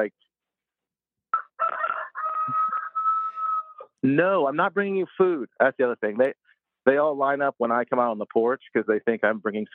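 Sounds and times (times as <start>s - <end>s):
speech: 0.0s - 0.2s, 4.0s - 9.7s
rooster crowing: 1.3s - 3.9s.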